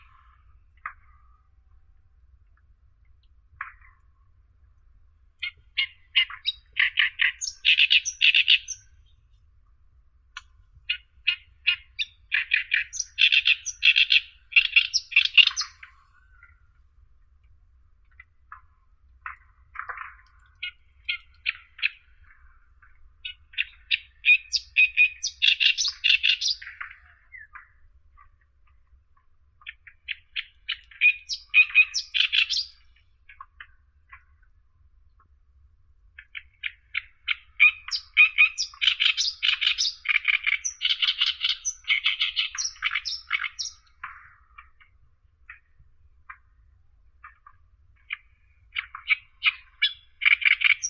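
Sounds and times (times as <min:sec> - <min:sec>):
oriental reed warbler Acrocephalus orientalis: 0:05.8 - 0:08.9, 0:10.9 - 0:15.9, 0:23.6 - 0:26.9, 0:30.8 - 0:32.8, 0:37.6 - 0:43.9, 0:48.7 - 0:50.8.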